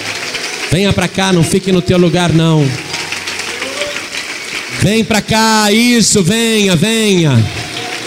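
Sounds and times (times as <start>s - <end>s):
audience applauding: 0.0s - 8.0s
speech: 0.7s - 2.8s, 4.8s - 7.7s.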